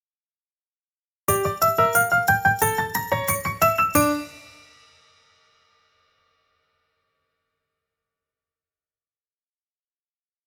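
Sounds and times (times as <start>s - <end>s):
happy klezmer dancing piano: 1.3s - 4.7s
soft percussion: 1.3s - 5.2s.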